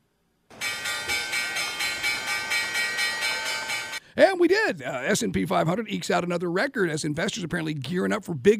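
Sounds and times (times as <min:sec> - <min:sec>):
stock exchange closing bell ringing: 0:00.5 - 0:04.2
speech: 0:04.2 - 0:08.5.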